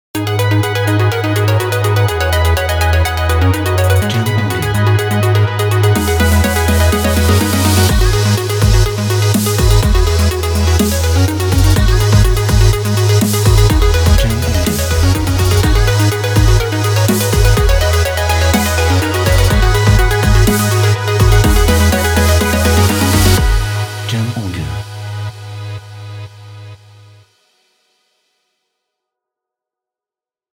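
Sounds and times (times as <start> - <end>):
uplifting EDM fashion music: 0.2 - 26.9.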